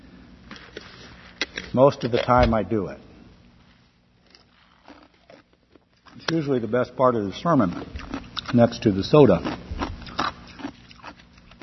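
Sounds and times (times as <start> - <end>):
speech: 1.7 - 3.1, 6.3 - 9.6
ice being chewed: 4.2 - 6.4, 7.5 - 11.6.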